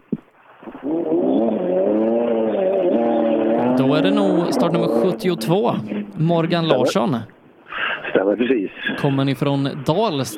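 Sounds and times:
red BMW E36 race car engine roaring at a motorsport event: 0:00.8 - 0:07.0
speech: 0:03.9 - 0:07.4, 0:08.2 - 0:10.3.

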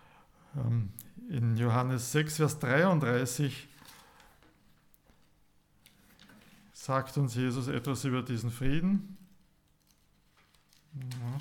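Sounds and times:
speech: 0:00.5 - 0:03.7, 0:06.9 - 0:09.2, 0:10.9 - 0:11.4
Bible pages being turned: 0:03.7 - 0:06.8, 0:09.1 - 0:11.4.

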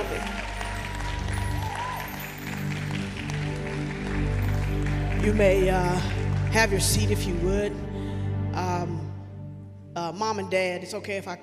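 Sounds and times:
audience applause filling the room: 0:00.0 - 0:07.0
steady low musical drone: 0:00.0 - 0:11.4
speech: 0:05.2 - 0:07.9, 0:10.1 - 0:11.4.

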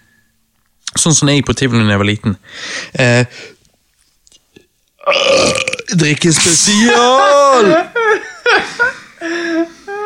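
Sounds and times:
speech: 0:01.0 - 0:03.6, 0:05.1 - 0:09.8
loud guttural burp: 0:05.0 - 0:06.0
laughter: 0:07.5 - 0:10.0.

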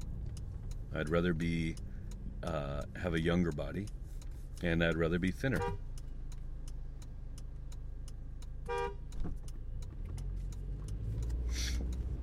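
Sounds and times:
road noise from inside a moving vehicle: 0:00.0 - 0:12.2
steady engine rumble of a moving vehicle: 0:00.0 - 0:12.2
ticking clicks: 0:00.0 - 0:12.2
speech: 0:00.9 - 0:04.0, 0:04.6 - 0:05.9
single short car horn honk: 0:05.5 - 0:05.8, 0:08.6 - 0:09.1.

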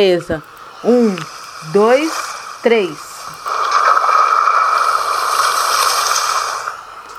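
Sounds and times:
speech: 0:00.0 - 0:03.1
sea water rushing and churning with loud bubbling: 0:01.2 - 0:06.8
splash of people diving into sea: 0:03.5 - 0:06.7.

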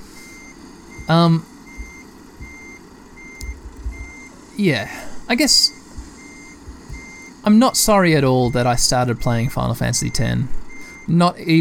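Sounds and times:
truck engine rumbling while reversing into a truck yard: 0:00.0 - 0:11.6
truck backup beeper beep: 0:00.2 - 0:04.3, 0:05.4 - 0:11.2
soft thumps: 0:00.9 - 0:04.3, 0:05.9 - 0:07.3
speech: 0:01.1 - 0:01.5, 0:04.6 - 0:05.8, 0:07.4 - 0:11.6.

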